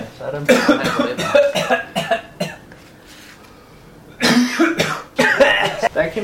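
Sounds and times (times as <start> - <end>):
speech: 0.2 - 1.2
man coughing: 0.5 - 2.6, 4.2 - 5.9.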